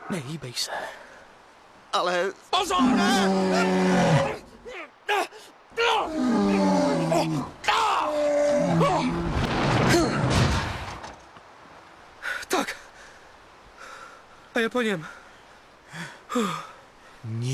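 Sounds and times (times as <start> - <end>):
speech: 0.1 - 1.0, 2.0 - 4.4, 14.6 - 15.2, 16.0 - 16.7, 17.2 - 17.5
bear roaring: 2.6 - 4.6, 5.8 - 10.4.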